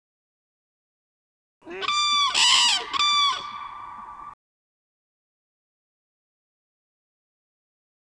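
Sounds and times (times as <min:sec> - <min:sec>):
common crane trumpeting played back: 0:01.7 - 0:04.4.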